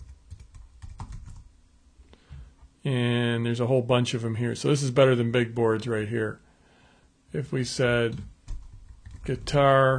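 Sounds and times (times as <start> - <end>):
typing on a computer keyboard: 0.0 - 1.5, 8.5 - 9.9
speech: 2.8 - 6.4, 7.3 - 8.3, 9.3 - 9.9.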